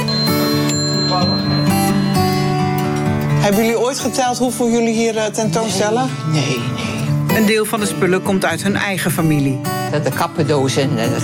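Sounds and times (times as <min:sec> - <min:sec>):
wall clocks at a museum farm chiming: 0:00.0 - 0:03.9
speech: 0:03.5 - 0:11.2.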